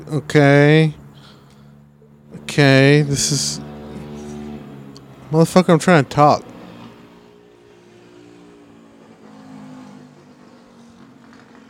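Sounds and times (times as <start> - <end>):
speech: 0.0 - 1.0, 2.6 - 3.7, 5.3 - 6.5
small motor scooter engine revving: 2.4 - 5.4, 6.2 - 11.6.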